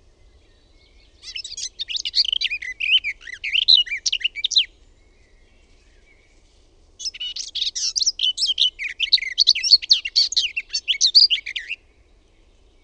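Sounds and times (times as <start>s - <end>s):
garden warbler song of mellow warbling chattering notes: 0.0s - 12.8s.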